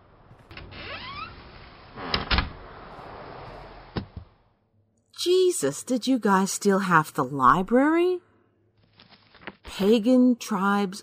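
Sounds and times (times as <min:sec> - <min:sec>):
door creaking shut: 0:00.2 - 0:03.1
speech: 0:05.6 - 0:08.2, 0:09.8 - 0:11.0.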